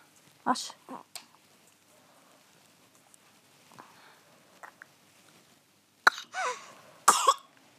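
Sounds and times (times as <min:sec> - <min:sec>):
person suspected of having bronchiolitis coughing: 0:06.1 - 0:07.5.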